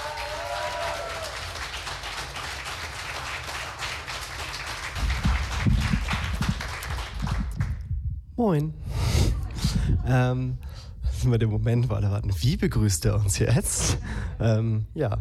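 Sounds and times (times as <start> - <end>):
whoops and cheers: 0.0 - 1.6
crowd applauding: 0.0 - 7.8
speech: 8.4 - 8.8, 9.9 - 15.1.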